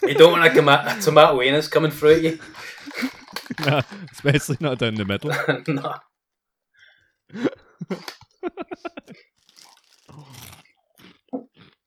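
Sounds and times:
laughter: 0:00.0 - 0:06.0, 0:07.4 - 0:09.2
speech: 0:00.0 - 0:06.1, 0:07.3 - 0:09.3
crunching and chewing crisp salt and vinegar corn snacks: 0:02.1 - 0:05.4, 0:09.0 - 0:11.8.

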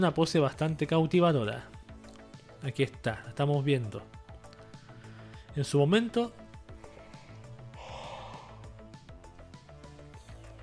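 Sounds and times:
speech: 0:00.0 - 0:01.8, 0:02.6 - 0:04.2, 0:05.6 - 0:06.4
rhythmic music with a plucky beat: 0:03.3 - 0:05.7, 0:06.3 - 0:10.6
breathy drawn-out yawn: 0:07.8 - 0:08.8.

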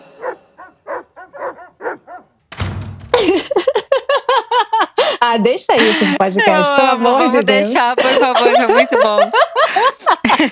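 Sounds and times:
dogs barking: 0:00.0 - 0:02.4
noisy thump or rustle: 0:02.5 - 0:03.8
laughter: 0:03.2 - 0:10.5
speech: 0:05.2 - 0:09.5.

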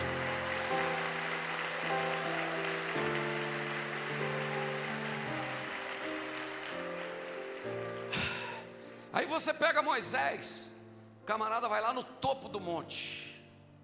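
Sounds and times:
audience applause: 0:00.0 - 0:08.8
sustained keyboard chords: 0:00.0 - 0:11.7
speech: 0:09.2 - 0:10.7, 0:11.3 - 0:13.3.

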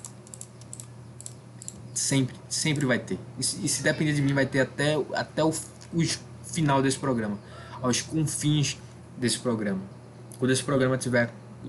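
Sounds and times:
soft quick computer mouse clicks: 0:00.0 - 0:01.8
faint low hum: 0:00.0 - 0:11.6
speech: 0:02.0 - 0:11.6.

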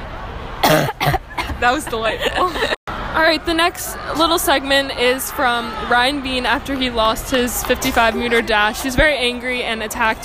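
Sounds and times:
person coughing with a voiced rasp: 0:00.6 - 0:01.6
laughter: 0:01.4 - 0:02.8
speech: 0:01.6 - 0:10.2.

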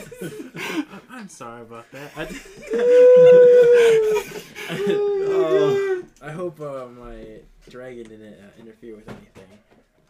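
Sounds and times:
laughter: 0:00.0 - 0:06.1
speech: 0:00.2 - 0:00.6, 0:01.2 - 0:09.7
excitable dog howling: 0:02.7 - 0:04.2, 0:04.8 - 0:06.1.

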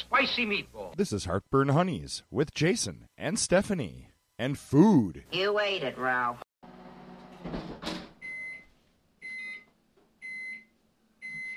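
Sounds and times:
speech: 0:00.0 - 0:06.5
microwave oven in a kitchen beeping: 0:06.7 - 0:11.5
clatter of a door or cupboard: 0:07.4 - 0:08.2.

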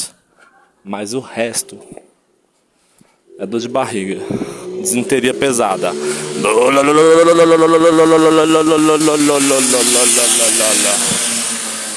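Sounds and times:
speech: 0:00.8 - 0:02.1, 0:03.4 - 0:10.0
voice imitating a motorcycle engine revving: 0:03.3 - 0:11.7.

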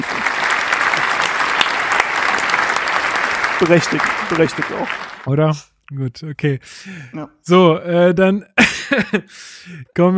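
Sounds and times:
crowd applauding: 0:00.0 - 0:05.3
speech: 0:03.6 - 0:10.1
laughter: 0:08.6 - 0:09.4.

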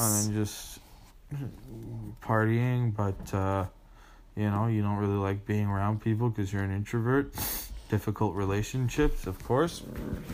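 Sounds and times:
speech: 0:00.0 - 0:03.8, 0:04.4 - 0:10.3
dog growling low: 0:09.7 - 0:10.3.

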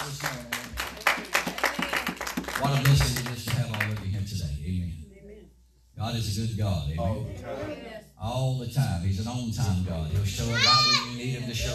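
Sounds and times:
audience clapping during a church worship service: 0:00.0 - 0:04.2
speech: 0:02.6 - 0:03.3, 0:06.0 - 0:11.7.

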